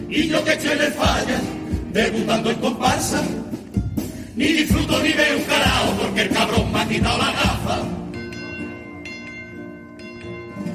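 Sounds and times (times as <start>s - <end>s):
speech: 0.1s - 3.6s, 4.4s - 8.0s
alarm bell ringing: 7.8s - 10.7s.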